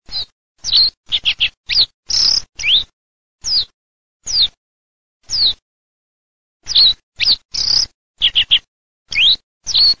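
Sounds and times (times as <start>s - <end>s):
reed bunting: 0.1s - 3.7s, 6.6s - 9.9s.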